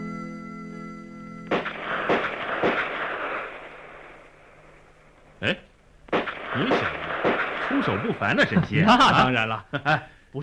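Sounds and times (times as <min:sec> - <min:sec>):
gunshots at a shooting range during live-fire practice: 0:01.5 - 0:04.8, 0:06.1 - 0:08.5
laughter: 0:07.7 - 0:10.1
speech: 0:08.0 - 0:10.4.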